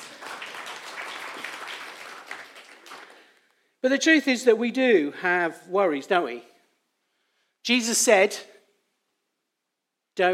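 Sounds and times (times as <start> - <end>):
audience applauding: 0.0 - 3.4
speech: 3.8 - 6.5, 7.7 - 8.5, 10.2 - 10.3.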